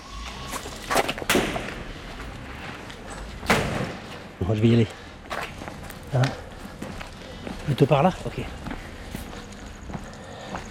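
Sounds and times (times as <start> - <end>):
gunshots in an inhabited area: 1.3 - 1.8
speech: 4.4 - 5.0, 6.1 - 6.4, 7.7 - 8.7.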